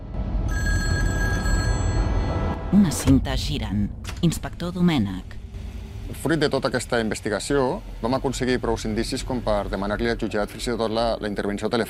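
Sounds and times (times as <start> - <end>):
wall-mounted kitchen telephone ringing: 0.4 - 2.6
speech: 2.7 - 5.4, 6.1 - 11.8
rumbling noise: 2.7 - 11.8.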